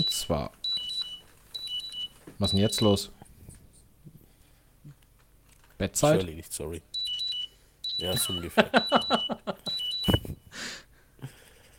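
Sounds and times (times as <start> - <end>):
speech: 0.0 - 0.6, 2.4 - 3.2, 5.8 - 6.9, 8.0 - 10.8
high-pitched electronic alarm clock beeps: 0.0 - 3.1, 6.9 - 10.4
laughter: 8.2 - 9.8.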